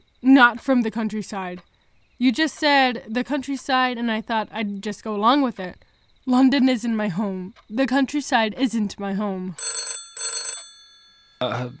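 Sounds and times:
speech: 0:00.2 - 0:09.8, 0:11.4 - 0:11.7
telephone bell ringing: 0:09.6 - 0:11.5.

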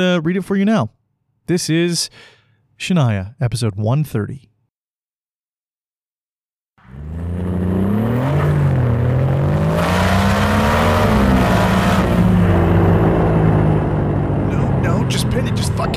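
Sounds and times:
speech: 0:00.0 - 0:04.5
aged vehicle engine straining and revving: 0:06.8 - 0:15.9.

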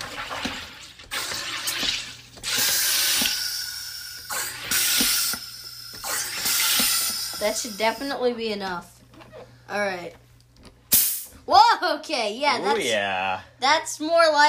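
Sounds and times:
carbonation machine forcing gas into water in its carbonation chamber: 0:02.4 - 0:08.2
speech: 0:07.4 - 0:08.9, 0:09.7 - 0:10.2, 0:11.5 - 0:14.4.

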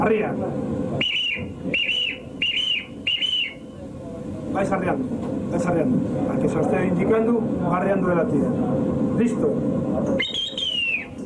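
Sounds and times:
speech: 0:00.0 - 0:01.8, 0:04.6 - 0:10.4
boatswain's whistle sounding short shrill command blasts: 0:01.0 - 0:03.6, 0:10.2 - 0:11.2.

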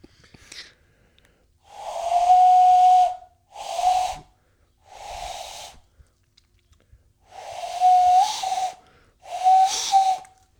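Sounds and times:
breathy hollow whistle blown through two cupped hands: 0:01.8 - 0:04.3, 0:05.0 - 0:05.8, 0:07.4 - 0:10.4.

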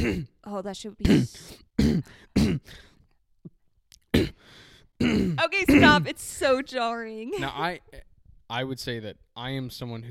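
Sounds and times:
throat clearing: 0:00.0 - 0:00.4, 0:01.0 - 0:02.9, 0:04.0 - 0:04.4, 0:05.0 - 0:06.0
speech: 0:00.0 - 0:02.9, 0:05.0 - 0:10.0.

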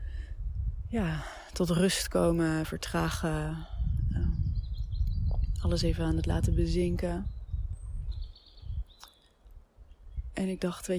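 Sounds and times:
speech: 0:00.9 - 0:03.7, 0:05.6 - 0:07.4, 0:10.4 - 0:10.9
birds chirping in a forest: 0:04.2 - 0:10.9.

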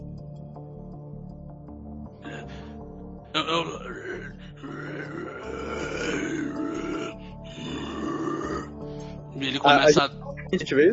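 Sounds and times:
speech: 0:03.4 - 0:05.6, 0:09.6 - 0:10.9
person voicing guttural creature-like grunts: 0:03.4 - 0:08.7.

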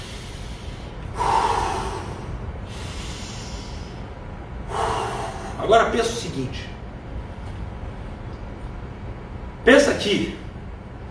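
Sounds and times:
deep breath through the nose: 0:00.0 - 0:05.6
speech: 0:05.7 - 0:06.7, 0:09.7 - 0:10.4.

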